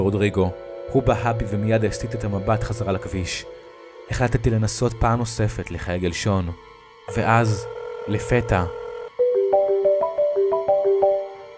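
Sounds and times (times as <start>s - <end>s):
speech: 0.0s - 8.8s
phone ringtone with bright electronic melody: 7.1s - 11.5s.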